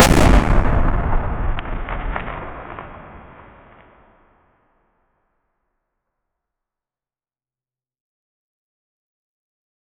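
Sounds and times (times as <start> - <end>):
concrete wall exploding: 0.0 - 4.2.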